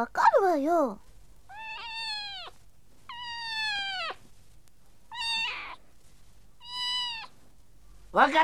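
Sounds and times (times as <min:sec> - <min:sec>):
speech: 0:00.0 - 0:01.1, 0:08.2 - 0:08.4
cat meowing: 0:01.5 - 0:04.3, 0:05.1 - 0:05.8, 0:06.6 - 0:07.4.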